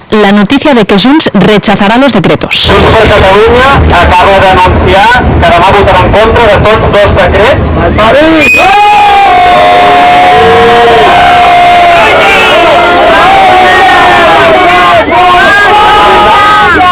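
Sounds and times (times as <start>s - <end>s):
speech: 0.1s - 12.6s
large outdoor crowd booing and jeering: 8.2s - 16.8s.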